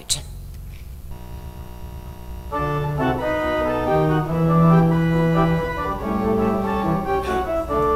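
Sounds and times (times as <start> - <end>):
calypso Christmas carol: 2.5 - 7.9.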